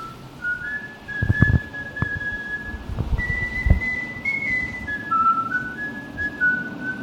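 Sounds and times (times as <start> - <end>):
person whistling a melody in a demo song intro: 0.0 - 7.0
steady hum: 0.0 - 7.0
low thumps: 1.1 - 4.0.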